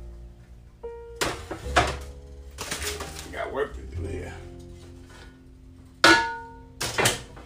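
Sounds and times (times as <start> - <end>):
pots clanging together while someone cooks: 1.2 - 3.3, 6.0 - 7.4.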